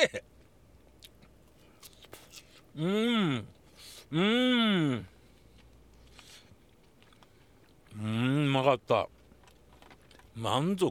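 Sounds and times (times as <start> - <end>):
speech: 0.0 - 0.3, 2.8 - 5.1, 8.0 - 9.2, 10.4 - 10.8
crunchy chewing of freshly deep-fried mehikari fish: 0.4 - 2.8, 5.2 - 10.8.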